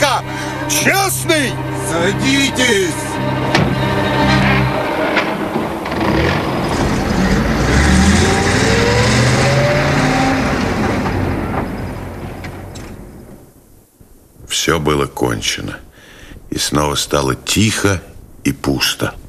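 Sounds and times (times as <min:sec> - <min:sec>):
speech: 0:00.7 - 0:03.7, 0:14.6 - 0:15.8, 0:16.5 - 0:19.2
car engine revving: 0:01.3 - 0:12.7.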